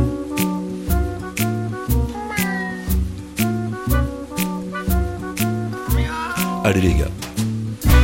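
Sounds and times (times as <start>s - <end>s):
upbeat music with a steady beat and bass: 0.0s - 8.0s
voices imitating cat meows in a bouncy rhythm: 2.1s - 3.0s, 5.7s - 7.2s
speech: 6.7s - 7.2s.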